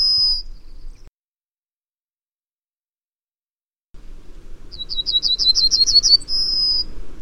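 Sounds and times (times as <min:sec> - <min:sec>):
bird whistling and chirping: 0:00.0 - 0:01.1, 0:04.7 - 0:06.9.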